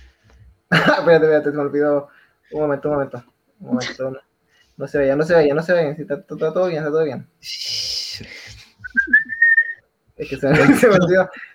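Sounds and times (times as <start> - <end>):
speech: 1.0 - 8.4, 10.2 - 11.5
person whistling a short steady tone: 8.8 - 9.8
laughter: 10.5 - 11.5.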